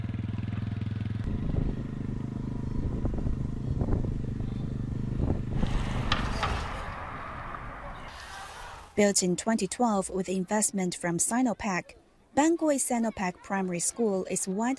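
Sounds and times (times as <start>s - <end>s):
motorcycle engine running: 0.0s - 6.7s
clanks and rattles: 5.6s - 7.8s
speech: 9.0s - 14.7s.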